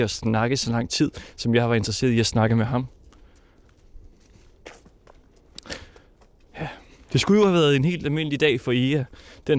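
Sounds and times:
speech: 0:00.0 - 0:03.0, 0:07.1 - 0:09.5
footsteps crunching outdoors at a walking pace: 0:01.3 - 0:09.5.

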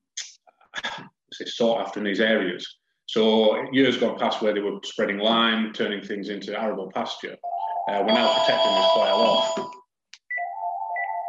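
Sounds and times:
speech: 0:01.4 - 0:09.8
mobile phone ringing: 0:07.4 - 0:11.2.

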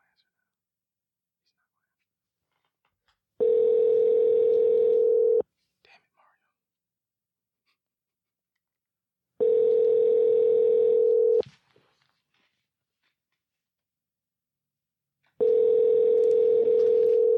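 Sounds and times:
telephone call ringing tone: 0:03.4 - 0:05.4, 0:09.4 - 0:11.4, 0:15.4 - 0:17.3.

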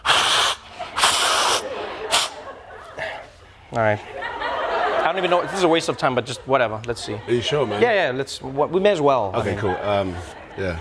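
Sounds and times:
person blowing nose in forceful breathy honks: 0:00.0 - 0:02.4
laughter: 0:00.7 - 0:10.7
speech: 0:03.8 - 0:04.2, 0:05.1 - 0:10.7.

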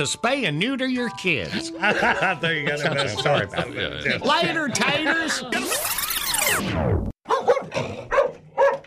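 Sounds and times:
speech: 0:00.0 - 0:07.1
laughter: 0:01.5 - 0:05.9
dog barking: 0:07.3 - 0:08.8.

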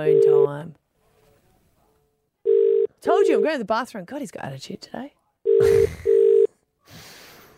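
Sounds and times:
speech: 0:00.0 - 0:00.8, 0:03.2 - 0:06.0
telephone ringing tone: 0:02.5 - 0:03.4, 0:05.5 - 0:06.5.

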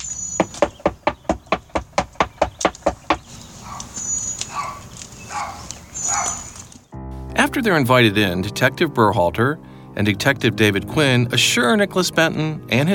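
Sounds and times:
quiet outdoor noise: 0:00.0 - 0:07.0
knocking on a front door: 0:00.4 - 0:03.3
speech: 0:07.6 - 0:12.9.

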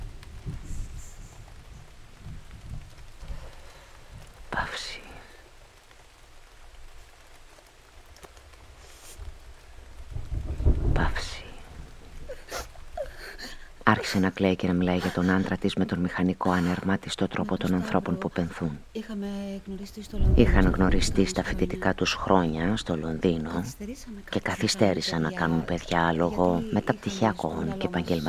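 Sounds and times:
thunder rumbling: 0:00.0 - 0:05.4, 0:08.7 - 0:13.8, 0:19.8 - 0:24.4
heavy rain: 0:00.0 - 0:28.2
speech: 0:13.9 - 0:28.2.

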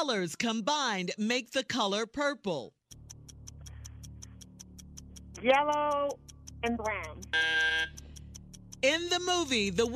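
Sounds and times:
speech: 0:00.0 - 0:02.8, 0:05.4 - 0:08.0, 0:08.8 - 0:09.9
game show clock ticking: 0:00.0 - 0:09.9
low humming musical bed: 0:02.9 - 0:09.9.

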